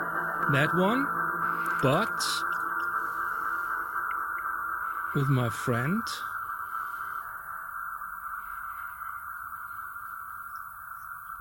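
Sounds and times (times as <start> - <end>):
sustained guitar tone with ionosphere reverb effect: 0.0 - 6.4
speech: 0.5 - 2.6, 5.2 - 6.3.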